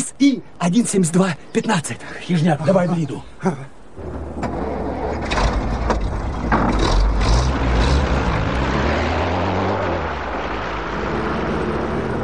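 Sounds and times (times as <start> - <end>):
speech: 0.2 - 4.1
car engine rumbling pulling away onto a highway: 3.7 - 12.2
clunks and rattles: 4.0 - 8.1.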